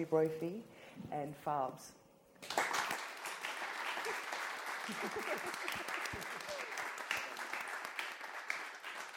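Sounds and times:
speech: 0:00.0 - 0:02.6, 0:04.9 - 0:06.3
audience applauding at the end of a talk's question time: 0:02.4 - 0:09.1
laughter: 0:03.9 - 0:07.0.

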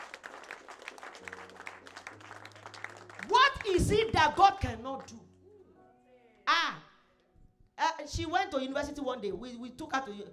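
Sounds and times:
crowd applauding: 0:00.0 - 0:05.1
speech: 0:03.6 - 0:05.3, 0:08.1 - 0:10.3.

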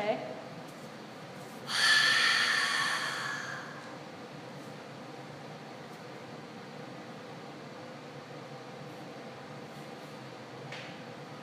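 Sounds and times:
long hissy breath exhaled through the nose during a breathing exercise: 0:01.7 - 0:03.9.

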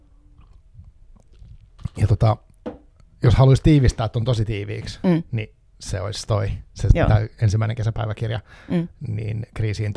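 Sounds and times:
person sipping water: 0:00.3 - 0:02.0
speech: 0:02.0 - 0:02.5, 0:03.2 - 0:09.9.

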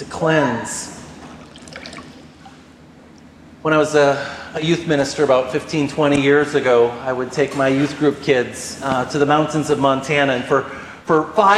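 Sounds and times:
speech: 0:00.2 - 0:00.9, 0:03.6 - 0:11.5
water trickling and pouring: 0:01.4 - 0:02.6.

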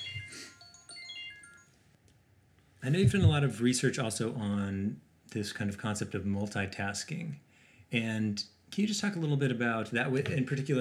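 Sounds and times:
phone ringtone of bright electronic tones: 0:00.0 - 0:01.8
speech: 0:02.8 - 0:10.7.

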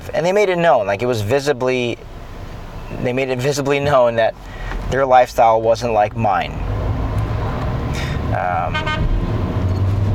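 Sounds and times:
traffic rumble: 0:00.0 - 0:10.1
speech: 0:00.2 - 0:02.1, 0:03.0 - 0:06.6, 0:08.3 - 0:09.1
car horn honking: 0:08.6 - 0:09.2.

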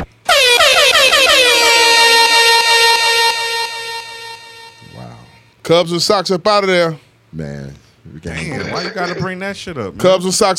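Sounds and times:
air horn blast sound effect: 0:00.3 - 0:05.4
speech: 0:05.7 - 0:10.5
laughter: 0:08.3 - 0:09.4.

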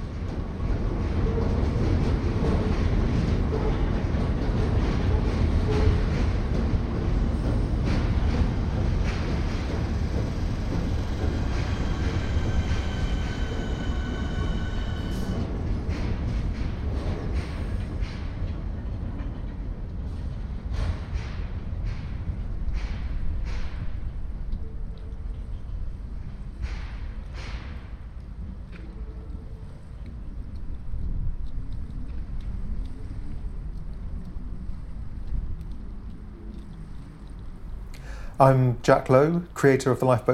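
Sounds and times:
train slowing near a station reverberating under a bridge: 0:00.0 - 0:35.8
faint metallic squeals of a train: 0:10.7 - 0:15.5
speech: 0:38.4 - 0:40.3.

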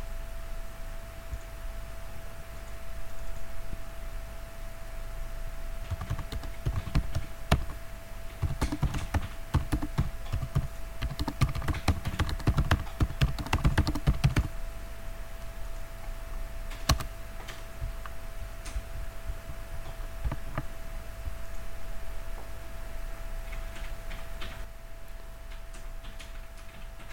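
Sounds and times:
steady electrical hum: 0:00.0 - 0:27.1
rapid typing of a message on a computer keyboard: 0:05.8 - 0:14.6, 0:16.7 - 0:20.7, 0:25.5 - 0:27.1.

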